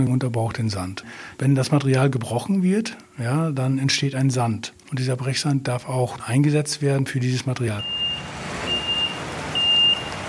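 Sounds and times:
speech: 0.0 - 8.3
40-tonne truck engine pulling up at a works site: 7.8 - 10.2
thin high reversing-style beeps: 7.8 - 10.2.

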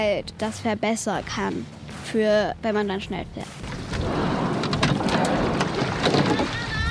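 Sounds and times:
speech: 0.0 - 4.4
rowing boat oar strokes splashing on water: 3.5 - 6.8
rushing water bursts from a rowing boat: 3.6 - 6.8.

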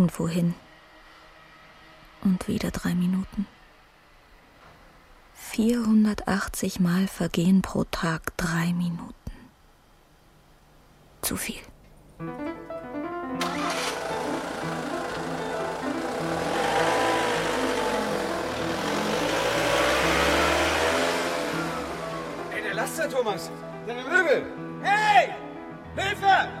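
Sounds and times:
speech: 0.0 - 0.6, 2.2 - 3.6, 5.4 - 9.2, 11.2 - 13.8, 22.8 - 26.5
heavy truck engine starting, revving and pulling away: 13.4 - 23.7.

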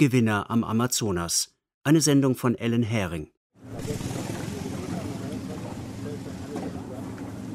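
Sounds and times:
speech: 0.0 - 4.1
small boat engine chugging on a river: 3.6 - 7.5.

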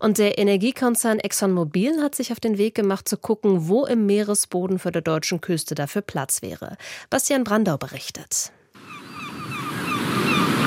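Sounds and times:
speech: 0.0 - 8.6
sea waves washing along the North Sea coast: 8.8 - 10.6.

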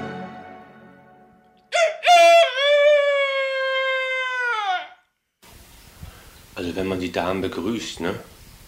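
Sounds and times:
rooster crowing: 1.7 - 5.1
speech: 7.2 - 8.3.

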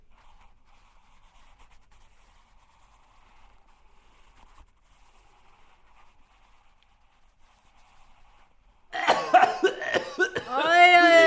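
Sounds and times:
person coughing roughly: 9.0 - 11.2.

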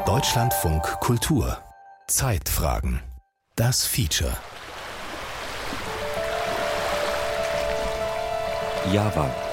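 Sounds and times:
speech: 0.2 - 4.6, 8.9 - 9.5
water lapping along a mangrove shoreline on a beach in east Java Indonesia: 4.4 - 9.5.

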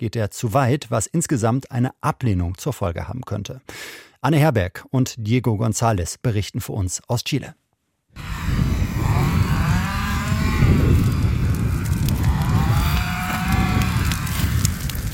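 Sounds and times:
speech: 0.0 - 7.6
sawing outdoors: 8.2 - 15.0
dense rumbling background: 8.2 - 15.1
large outdoor campfire crackling and popping: 8.2 - 15.1.

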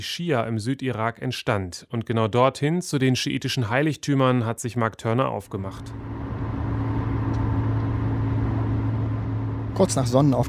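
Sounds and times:
speech: 0.0 - 6.2, 9.8 - 10.4
engine hum and road rumble inside moving car: 5.6 - 10.4.

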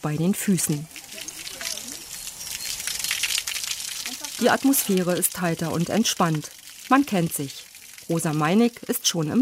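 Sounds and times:
speech: 0.0 - 1.1, 4.4 - 9.4
water from a hose splashing and gushing over a surface: 0.0 - 9.4.

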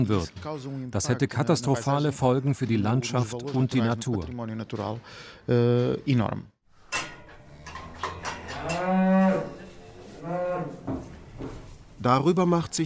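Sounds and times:
speech: 0.0 - 6.5, 12.0 - 12.8
faint clattering: 6.8 - 9.8
cows mooing in a barn: 7.4 - 11.2.

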